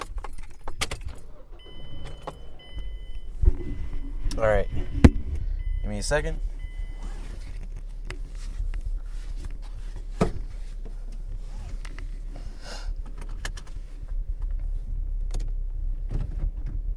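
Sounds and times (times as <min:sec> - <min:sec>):
keys jingling: 0:00.0 - 0:03.1
mechanical clunks: 0:00.0 - 0:08.2
car engine cranking and idling: 0:00.0 - 0:16.9
speech: 0:04.4 - 0:04.9, 0:06.0 - 0:06.5.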